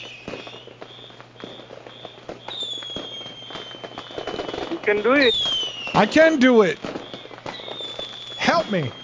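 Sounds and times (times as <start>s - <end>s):
fireworks going off out of control on Father's Day: 0.0s - 9.0s
speech: 4.9s - 5.4s, 6.0s - 6.9s, 8.7s - 9.0s.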